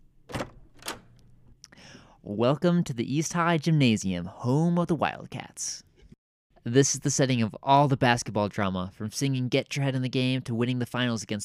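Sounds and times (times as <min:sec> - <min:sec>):
double doors swinging open: 0:00.1 - 0:01.3
speech: 0:02.2 - 0:05.9, 0:06.6 - 0:11.4.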